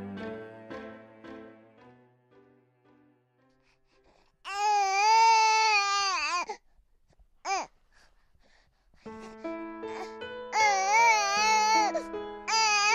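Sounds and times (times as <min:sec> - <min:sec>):
newborn baby boy wailing: 0:04.5 - 0:06.6, 0:10.5 - 0:12.9.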